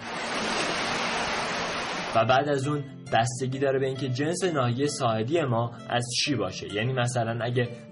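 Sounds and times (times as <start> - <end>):
sea waves washing onto a shore: 0.0 - 2.4
speech: 2.1 - 7.8.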